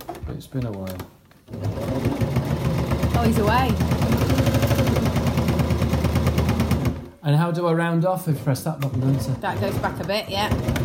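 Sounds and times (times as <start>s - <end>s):
speech: 0.3s - 2.6s, 3.2s - 5.2s, 7.3s - 10.8s
sewing machine running: 1.5s - 7.2s, 8.4s - 10.8s.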